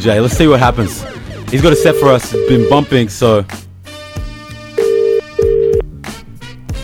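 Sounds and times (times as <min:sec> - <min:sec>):
speech: 0:00.0 - 0:03.6
thumping music track: 0:00.0 - 0:06.8
ringback tones of an outgoing phone call: 0:01.6 - 0:02.9, 0:04.7 - 0:05.9.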